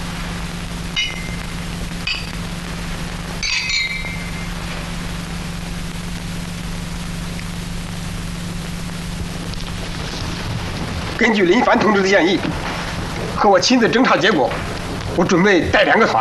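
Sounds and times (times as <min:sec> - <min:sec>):
steady low hum and hiss: 0:00.0 - 0:16.1
glasses clinking together in a toast: 0:03.4 - 0:04.3
speech: 0:11.2 - 0:12.7, 0:13.4 - 0:16.1.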